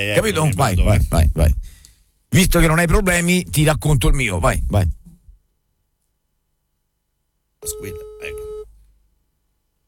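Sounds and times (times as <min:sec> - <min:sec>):
speech: 0:00.0 - 0:05.0, 0:07.6 - 0:08.4
ringback tone of an outgoing phone call: 0:07.6 - 0:08.7.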